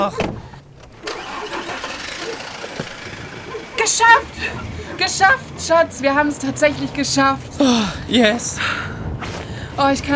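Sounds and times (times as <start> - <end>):
speech: 0.0 - 0.4, 3.8 - 8.9, 9.8 - 10.1
bus engine starting: 0.7 - 6.6.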